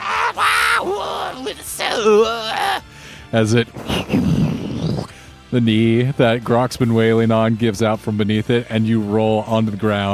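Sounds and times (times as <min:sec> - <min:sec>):
voice imitating screeching zombies: 0:00.0 - 0:02.8, 0:03.8 - 0:05.1
speech: 0:01.5 - 0:04.6, 0:05.5 - 0:10.1.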